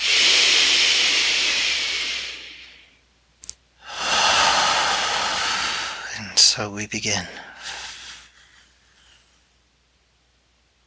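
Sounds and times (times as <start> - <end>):
deep slow breathing during a guided meditation: 0.0 - 3.0, 3.8 - 9.4
speech: 6.4 - 7.8.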